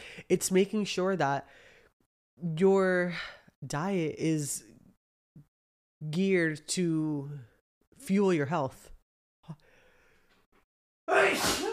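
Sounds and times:
speech: 0.2s - 1.7s, 2.4s - 4.7s, 6.0s - 8.9s
sneeze: 11.1s - 11.7s.

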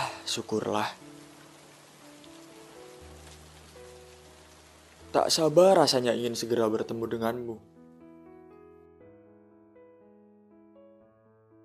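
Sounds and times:
steady rain drops striking a surface: 0.0s - 7.2s
speech: 0.4s - 1.1s, 5.1s - 7.7s.

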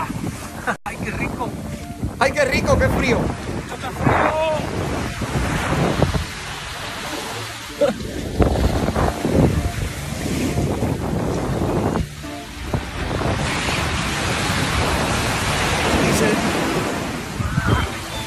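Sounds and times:
gusts of wind rumbling across the microphone: 0.0s - 18.2s
sea waves washing onto a beach in Chile: 0.0s - 18.2s
speech: 0.7s - 1.6s, 2.2s - 4.9s
laughter: 7.0s - 8.3s.

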